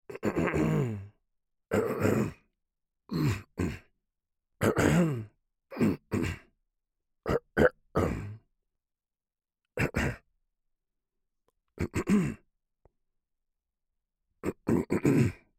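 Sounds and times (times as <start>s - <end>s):
person clearing a tickle in the throat: 0.1s - 1.0s, 1.7s - 2.4s, 4.6s - 6.5s, 7.3s - 8.4s, 9.8s - 10.2s, 11.8s - 12.4s, 14.4s - 15.5s.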